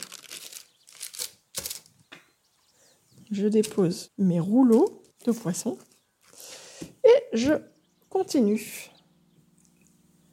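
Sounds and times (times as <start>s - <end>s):
parchment paper crinkling while laid into a dish: 0.0s - 2.1s, 4.6s - 6.5s
speech: 3.3s - 5.9s, 7.3s - 8.9s.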